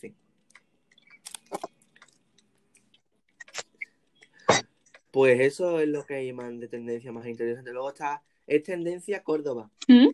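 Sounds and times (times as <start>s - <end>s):
speech: 0.0s - 0.2s, 5.2s - 10.1s
wet chewing of strawberries: 0.4s - 3.9s.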